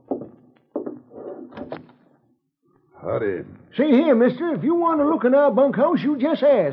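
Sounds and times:
wooden door being opened: 0.0s - 2.0s
speech: 3.1s - 6.7s.

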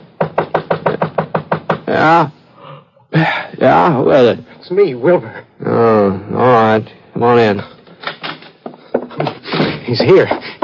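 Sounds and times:
pounding on a door: 0.0s - 1.9s
speech: 1.9s - 2.4s, 3.1s - 7.7s, 9.9s - 10.6s.

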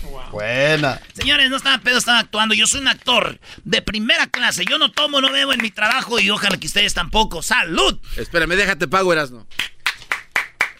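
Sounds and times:
speech: 0.2s - 9.7s
sharp hand claps: 4.3s - 6.7s, 9.6s - 10.7s.

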